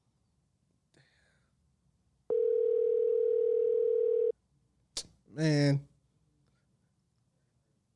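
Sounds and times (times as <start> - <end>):
outgoing phone call electronic ringing tone: 2.3 - 4.3
speech: 5.4 - 5.9.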